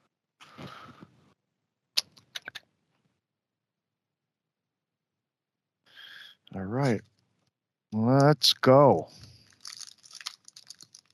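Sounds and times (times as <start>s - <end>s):
speech: 6.6s - 7.1s, 8.1s - 9.2s
pack of trading cards riffled while being shuffled: 9.4s - 11.1s.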